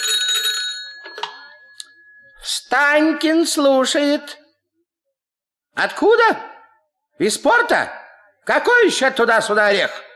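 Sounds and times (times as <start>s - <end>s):
telephone bell ringing in an office on the 130th floor: 0.0s - 2.5s
speech: 2.7s - 4.4s, 5.8s - 6.5s, 7.2s - 10.1s.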